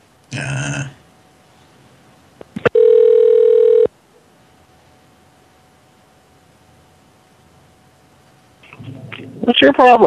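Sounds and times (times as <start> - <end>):
long steady loud telephone tone: 2.6 - 4.0
telephone ringing while a call is redialed: 2.7 - 3.9
speech: 9.6 - 10.0.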